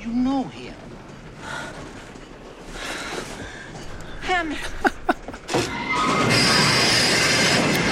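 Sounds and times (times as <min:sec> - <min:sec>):
train wheels rumbling: 0:00.0 - 0:07.9
speech: 0:04.4 - 0:04.9
train emergency brake screeching: 0:05.6 - 0:07.9.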